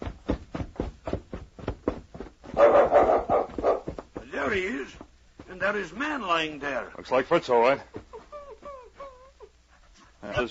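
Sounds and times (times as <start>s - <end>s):
small dog barking: 2.5s - 4.0s
speech: 4.6s - 8.0s, 10.3s - 10.4s
laughter: 7.8s - 9.6s.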